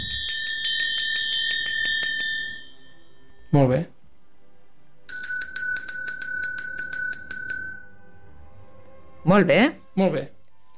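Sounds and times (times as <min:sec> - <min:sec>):
bell ringing: 0:00.0 - 0:03.6, 0:05.1 - 0:08.3
speech: 0:03.5 - 0:04.0, 0:09.2 - 0:10.4.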